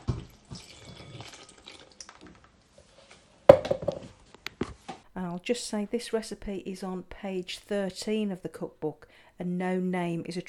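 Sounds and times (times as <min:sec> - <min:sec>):
milk pouring over bread: 0:00.0 - 0:02.5
speech: 0:05.2 - 0:10.4.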